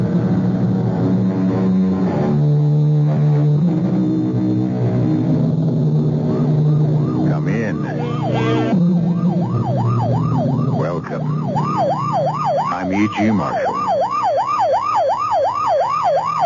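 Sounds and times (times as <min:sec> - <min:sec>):
police car or ambulance siren wailing: 0:00.0 - 0:16.4
man speaking: 0:07.3 - 0:08.7, 0:10.8 - 0:11.3, 0:12.7 - 0:13.8.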